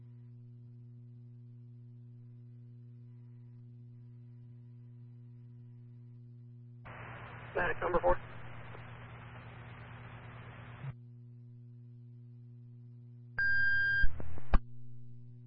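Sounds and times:
low electrical hum: 0.0s - 15.4s
radio static with crackling bursts: 6.9s - 10.9s
speech: 7.6s - 8.2s.

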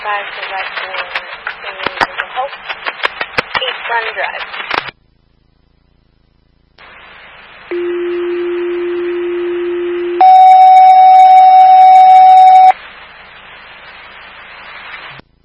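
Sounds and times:
radio hiss: 0.0s - 5.6s, 6.8s - 8.6s, 12.6s - 15.4s
faint static: 0.0s - 15.4s
speech: 0.1s - 3.0s, 3.6s - 4.9s
fire station dispatch alert tones: 7.7s - 12.7s.

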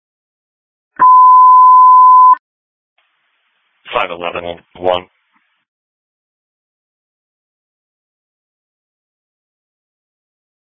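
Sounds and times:
phone tone, steady electronic note: 1.0s - 2.4s
person talking: 3.9s - 5.1s.

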